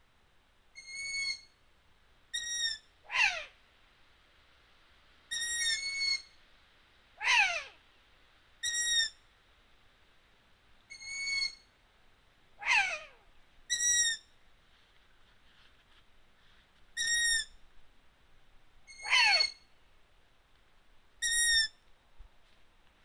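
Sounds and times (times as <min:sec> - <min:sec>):
faint background hiss: 0:00.0 - 0:23.0
long-eared owl squeaks and descending screeches: 0:00.8 - 0:01.5, 0:02.3 - 0:03.5, 0:05.3 - 0:06.4, 0:07.2 - 0:07.7, 0:08.6 - 0:09.2, 0:10.9 - 0:11.7, 0:12.6 - 0:14.2, 0:17.0 - 0:17.5, 0:18.9 - 0:19.7, 0:21.2 - 0:21.8.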